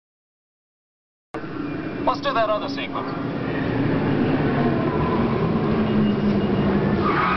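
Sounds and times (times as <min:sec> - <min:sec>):
speech: 0:01.4 - 0:03.4
road and tire noise: 0:01.4 - 0:07.3
car braking hard without anti-lock brakes: 0:03.5 - 0:07.3.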